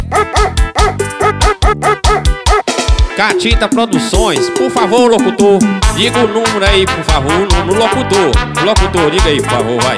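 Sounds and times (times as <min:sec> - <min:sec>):
dog barking rapidly and loudly: 0:00.0 - 0:02.7
speech: 0:03.2 - 0:09.9.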